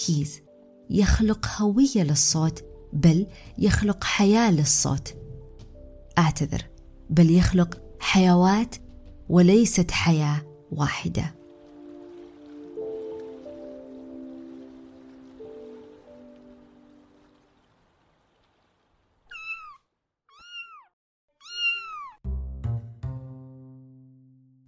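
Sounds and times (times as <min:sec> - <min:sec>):
speech: 0:00.0 - 0:05.2, 0:06.2 - 0:11.4
cat meowing: 0:19.3 - 0:22.2.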